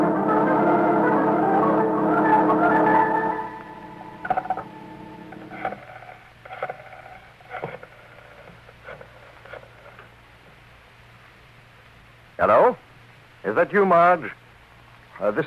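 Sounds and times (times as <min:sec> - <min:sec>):
telephone dial tone humming: 0:00.0 - 0:05.8
speech: 0:13.6 - 0:14.4, 0:15.2 - 0:15.4.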